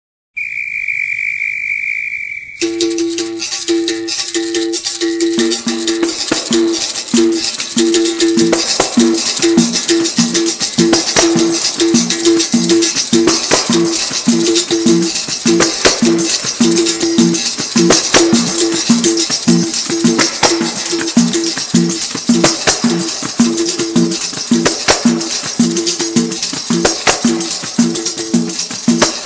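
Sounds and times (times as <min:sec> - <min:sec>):
capoeira music: 0:00.8 - 0:29.2.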